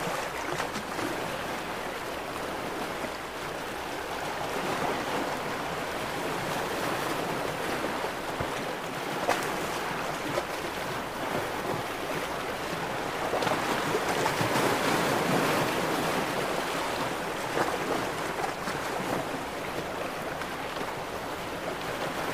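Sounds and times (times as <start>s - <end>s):
ocean waves washing: 0.0s - 22.3s.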